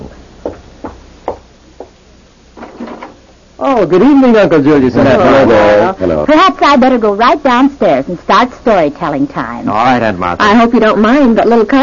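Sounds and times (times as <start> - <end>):
knocking on a door: 0.0 - 2.0
speech: 3.6 - 11.8.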